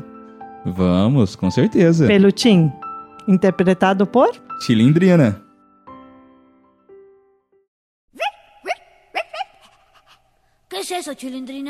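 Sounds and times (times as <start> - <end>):
speech: 0.6 - 5.4, 10.9 - 11.6
small dog yapping high-pitched: 8.2 - 10.2.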